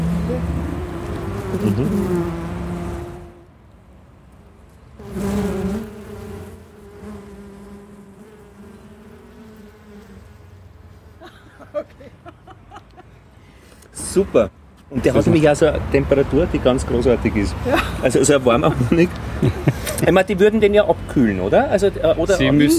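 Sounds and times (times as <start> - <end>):
many honeybees buzzing at an open hive: 0.0 - 3.5, 4.9 - 11.9, 19.3 - 22.7
speech: 1.5 - 2.4, 14.2 - 22.7
laughter: 11.2 - 13.2, 17.6 - 20.4.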